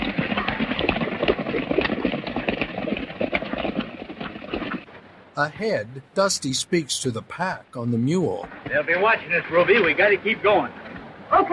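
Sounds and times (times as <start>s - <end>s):
several horses riding away, hooves clattering: 0.0s - 4.8s
speech: 5.4s - 11.5s.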